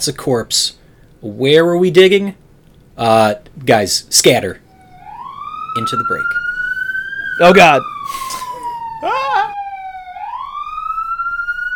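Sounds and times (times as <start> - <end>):
speech: 0.0 - 2.4, 3.0 - 4.6, 5.8 - 6.4, 7.4 - 8.4
police car siren wailing: 4.7 - 11.7.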